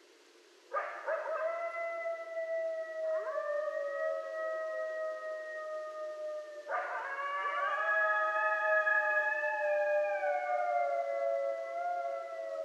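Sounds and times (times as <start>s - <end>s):
coyotes howling at night: 0.7s - 12.6s.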